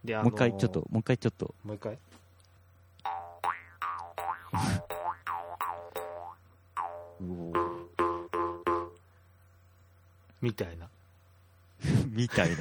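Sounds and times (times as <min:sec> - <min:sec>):
speech: 0:00.0 - 0:02.2, 0:04.5 - 0:05.0, 0:07.2 - 0:07.8, 0:10.4 - 0:11.0, 0:11.8 - 0:12.6
jaw harp twanging in a bouncy rhythm: 0:03.1 - 0:09.0
laughter: 0:12.0 - 0:12.6.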